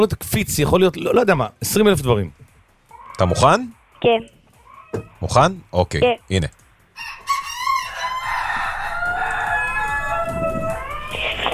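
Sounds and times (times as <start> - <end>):
speech: 0.0 - 2.4, 3.2 - 7.2
roosters crowing: 4.5 - 5.2, 7.0 - 11.5.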